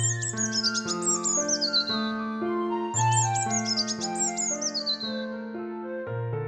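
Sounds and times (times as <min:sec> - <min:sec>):
robin redbreast chirping on a bird table in a garden: 0:00.0 - 0:05.3
gentle musical backdrop of sustained tones: 0:00.0 - 0:06.4.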